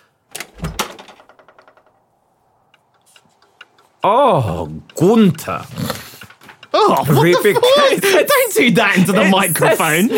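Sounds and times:
door being unlocked with metallic clicking and rattling: 0.3s - 2.2s
speech: 4.0s - 5.9s, 6.9s - 10.1s
laughter: 6.8s - 10.1s.

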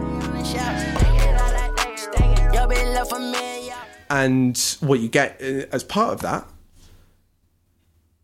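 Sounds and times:
dark trap beat in Phrygian mode with 808 bass, synth, hi-hats and drums: 0.1s - 4.1s
speech: 4.1s - 6.5s.

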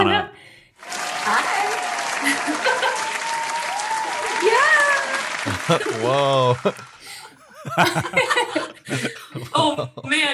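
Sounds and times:
speech: 0.0s - 0.5s, 5.7s - 6.9s, 7.6s - 10.3s
crowd applauding: 0.8s - 8.5s
laughter: 2.0s - 3.4s, 4.5s - 10.3s.

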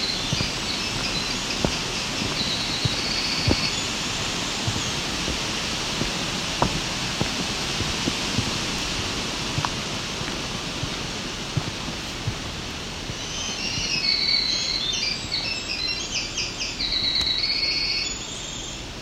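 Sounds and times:
black-throated green warbler singing: 0.0s - 6.2s, 13.0s - 18.8s
winter wren singing: 0.0s - 9.1s, 12.8s - 18.9s
steady roar of wind: 0.0s - 14.4s.

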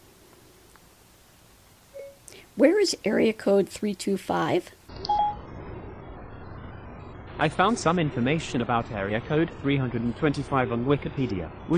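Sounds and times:
faint hum: 0.0s - 11.7s
short electronic tones of a phone's voice assistant activating: 1.9s - 2.3s, 5.0s - 5.5s
speech: 2.6s - 4.8s, 7.4s - 11.7s.

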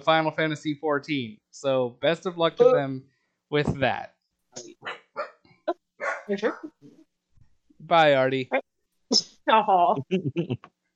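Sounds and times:
speech: 0.0s - 5.0s, 6.3s - 7.0s, 7.8s - 10.7s
dog barking: 4.8s - 5.4s, 6.0s - 6.8s.

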